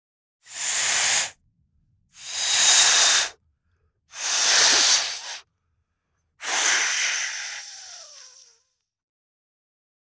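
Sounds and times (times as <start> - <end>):
balloon being blown up: 0.5 - 1.4, 2.2 - 3.3, 4.2 - 5.4, 6.4 - 8.5.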